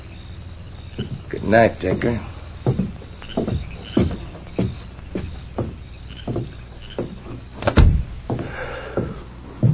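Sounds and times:
speech: 0:01.0 - 0:02.3
soft evenly spaced thumps: 0:01.0 - 0:09.7
door swinging shut with a solid thud: 0:06.3 - 0:08.4.

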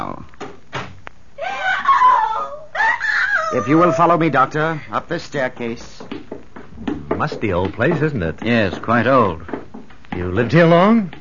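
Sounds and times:
woman screaming: 0:01.4 - 0:04.2
speech: 0:03.5 - 0:06.0, 0:07.2 - 0:09.6, 0:10.2 - 0:11.1.

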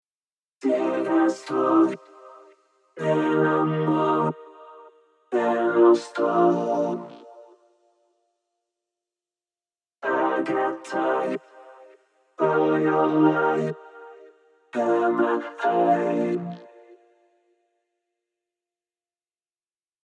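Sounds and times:
vocoder solo from a vocoder plugin: 0:00.6 - 0:02.4, 0:03.0 - 0:04.5, 0:05.3 - 0:07.2, 0:10.0 - 0:11.5, 0:12.4 - 0:13.9, 0:14.8 - 0:16.7.

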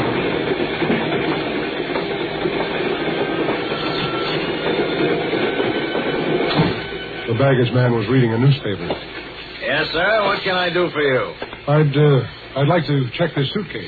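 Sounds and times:
train wheels clickety-clack on the rails: 0:00.0 - 0:07.0
train rolling along the tracks through a station, slowing down: 0:00.0 - 0:13.8
speech: 0:07.4 - 0:09.1, 0:09.8 - 0:13.8.

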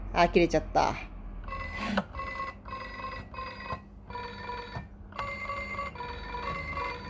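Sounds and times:
speech: 0:00.2 - 0:01.1
toy keyboard electronic telephone ring: 0:01.5 - 0:07.0.

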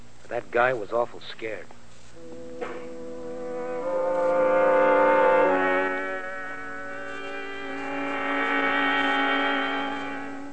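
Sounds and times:
speech: 0:00.3 - 0:02.8
truck engine droning roar on the road: 0:02.2 - 0:10.5.

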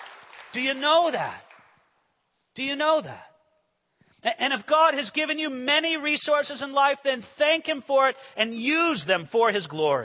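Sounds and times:
audience applause: 0:00.0 - 0:01.7
speech: 0:00.5 - 0:01.5, 0:02.6 - 0:03.3, 0:04.2 - 0:10.0.

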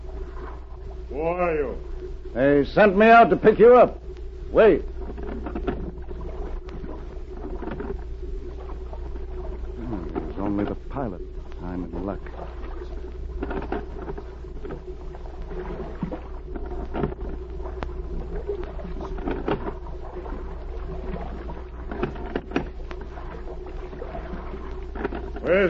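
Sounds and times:
light watery patter of a rowboat on the water: 0:00.0 - 0:25.6
low rumble: 0:00.0 - 0:25.6
speech: 0:01.2 - 0:05.5
knocks and creaks of a rowboat drawing alongside: 0:05.0 - 0:06.0, 0:07.4 - 0:08.0, 0:13.3 - 0:14.9, 0:16.5 - 0:17.9, 0:21.9 - 0:23.0, 0:24.9 - 0:25.5.

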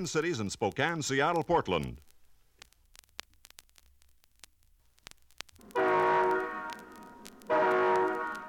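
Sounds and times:
speech: 0:00.0 - 0:02.1
faint scattered clicks and rumble of passing passenger train: 0:00.0 - 0:08.4
passenger train horn blasts: 0:05.7 - 0:08.4.

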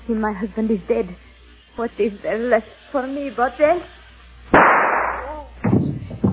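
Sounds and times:
speech: 0:00.1 - 0:04.0
gunshot as a woman shoots herself: 0:04.5 - 0:05.4.

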